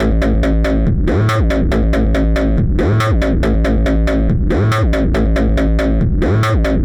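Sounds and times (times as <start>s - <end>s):
dubstep bassline at 140 BPM in A: 0.0s - 6.8s.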